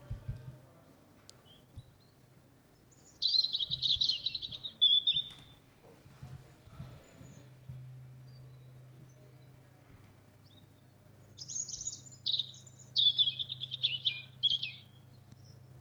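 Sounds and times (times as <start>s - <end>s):
low steady hum: 0.0s - 15.7s
European robin singing: 0.8s - 5.9s, 8.2s - 15.7s.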